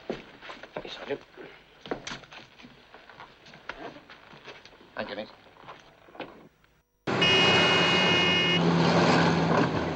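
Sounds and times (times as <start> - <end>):
speech: 0.9 - 1.5, 5.0 - 5.4
loud road traffic roar of engines with a high whine: 7.1 - 9.9.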